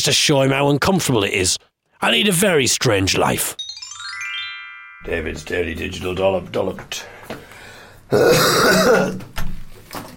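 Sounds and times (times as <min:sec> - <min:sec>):
speech: 0:00.0 - 0:03.6, 0:05.0 - 0:07.5, 0:08.1 - 0:09.3
raspy throaty cough from a person with hardly any voice: 0:08.1 - 0:09.2.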